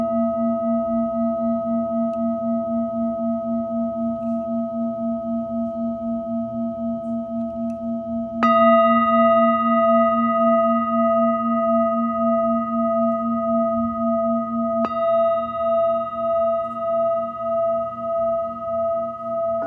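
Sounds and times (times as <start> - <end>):
singing bowl ringing: 0.0 - 19.6.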